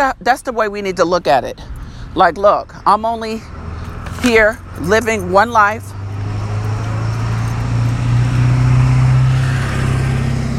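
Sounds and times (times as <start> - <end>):
speech: 0.0 - 3.6, 4.2 - 5.9
loud truck engine rumbling past: 3.4 - 10.5.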